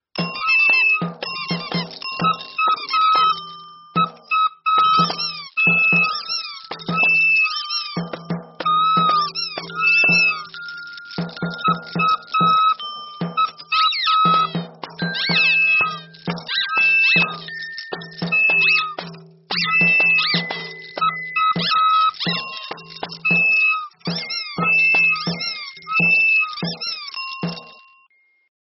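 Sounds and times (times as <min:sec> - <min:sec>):
kids band nursery music: 0:00.0 - 0:27.9.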